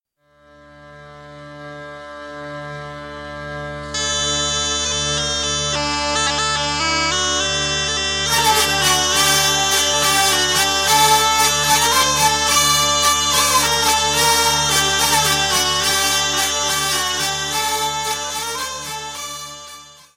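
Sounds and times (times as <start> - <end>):
traditional bourree and waltz bourree dance tunes: 0.8 - 20.1.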